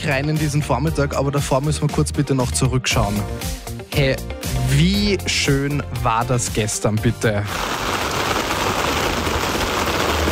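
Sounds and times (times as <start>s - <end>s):
speech: 0.0s - 8.0s
steady rain pouring onto surfaces: 7.4s - 10.2s.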